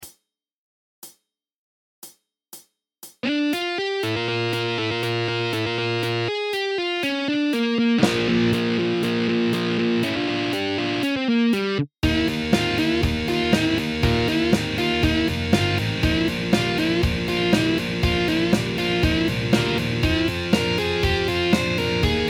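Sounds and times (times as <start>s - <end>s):
slow rock guitar solo: 3.2s - 22.2s.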